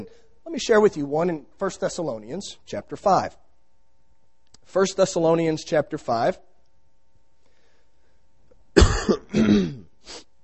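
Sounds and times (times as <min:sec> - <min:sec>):
speech: 0:00.0 - 0:03.4, 0:04.7 - 0:06.5
person coughing: 0:08.8 - 0:10.0
rough throat clearing: 0:08.8 - 0:10.0.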